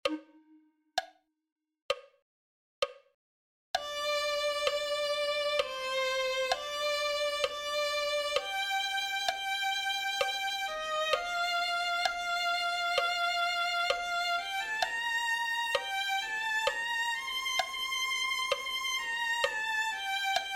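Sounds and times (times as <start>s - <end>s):
violin: 3.8s - 20.5s.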